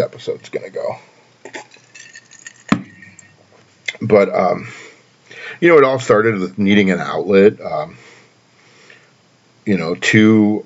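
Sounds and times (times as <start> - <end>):
speech: 0.0 - 1.6, 4.1 - 4.8, 5.5 - 8.1, 9.6 - 10.6
whiskey glass clinking: 1.5 - 3.4.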